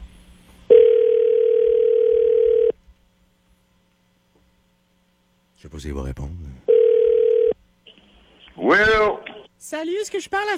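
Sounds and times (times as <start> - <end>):
electronic telephone ring tone during an outgoing call: 0.7 - 2.8, 6.7 - 7.6
speech: 5.8 - 6.7, 8.7 - 10.5.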